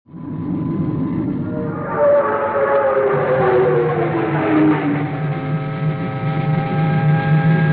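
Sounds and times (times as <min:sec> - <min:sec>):
speed dive: 0:00.2 - 0:07.6.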